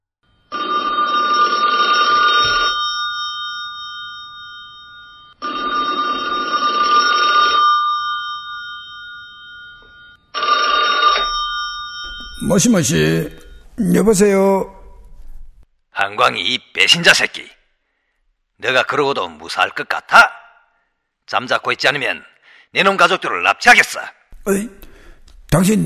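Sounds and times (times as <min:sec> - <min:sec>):
telephone ringing with trilling bell tone: 0:00.3 - 0:13.8
speech: 0:12.5 - 0:14.7, 0:16.9 - 0:17.5, 0:18.6 - 0:20.4, 0:21.3 - 0:24.9, 0:25.5 - 0:25.8.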